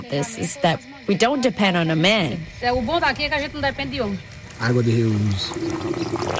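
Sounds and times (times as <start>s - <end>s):
speech: 0.1s - 6.3s
electric pump starting up with a droning hum: 1.2s - 6.3s
water rushing and pouring through rubber hoses: 4.7s - 6.3s.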